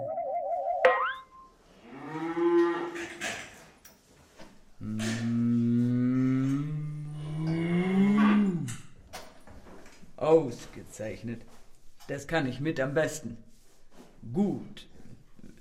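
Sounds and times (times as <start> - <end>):
brief warbling twinkly tone: 0.0 - 1.5
cow mooing: 1.8 - 3.2, 4.8 - 8.9
speech: 10.4 - 13.5, 14.2 - 14.9.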